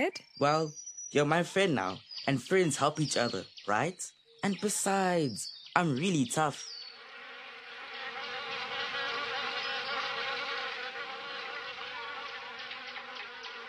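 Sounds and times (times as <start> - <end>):
speech: 0.0 - 6.8
many bees buzzing around a large beehive hanging from a tall tree: 5.8 - 13.6.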